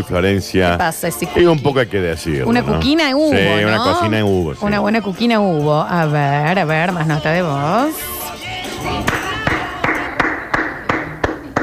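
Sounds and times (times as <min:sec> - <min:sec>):
speech: 0:00.0 - 0:08.2
dense murmur of voices: 0:00.0 - 0:11.6
rhythmic clapping: 0:02.5 - 0:11.6.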